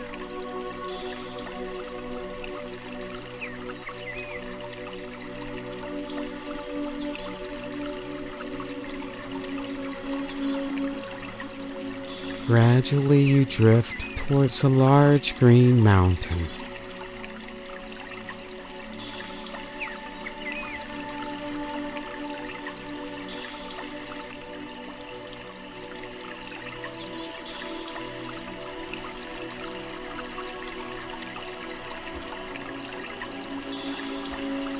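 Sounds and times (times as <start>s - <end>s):
cascading waterfall rushing with fine splashes and trickles: 12.3s - 16.9s
speech: 12.5s - 16.6s.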